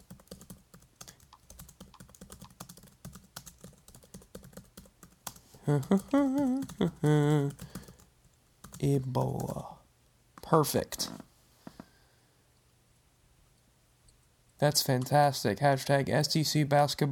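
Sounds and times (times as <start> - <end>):
rapid keyboard typing: 0.0 - 9.6
speech: 5.6 - 7.7, 8.8 - 9.8, 10.5 - 11.1, 14.6 - 17.0.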